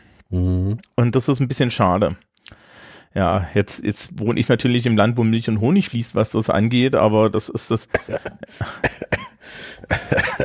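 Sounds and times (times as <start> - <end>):
speech: 0.3 - 2.3, 3.1 - 10.4
laughter: 7.9 - 9.1, 9.9 - 10.4
spontaneous fit of harsh coughing: 7.9 - 10.4.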